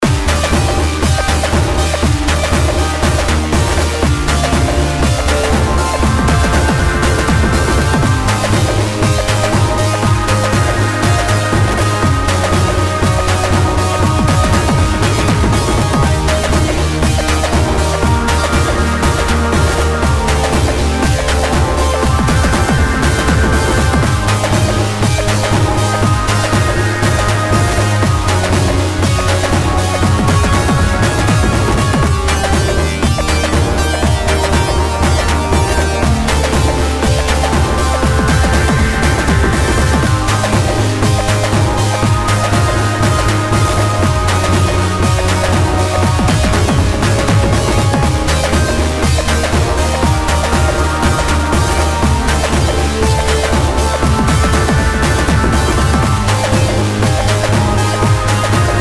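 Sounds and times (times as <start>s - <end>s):
sci-fi sound loop: 0.0s - 58.8s.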